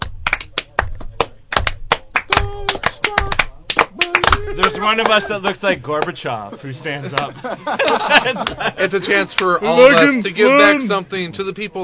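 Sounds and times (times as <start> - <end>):
hand claps: 0.0 - 6.2, 7.1 - 7.3, 7.9 - 8.6
laughter: 2.4 - 5.6, 6.5 - 9.6
speech: 4.6 - 11.8.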